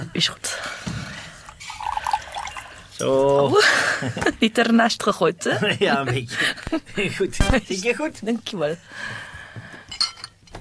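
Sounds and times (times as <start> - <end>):
speech: 0.2 - 0.7, 3.0 - 9.3
water trickling and dripping into a glass: 1.4 - 3.5
laughter: 3.4 - 4.4, 5.5 - 7.8.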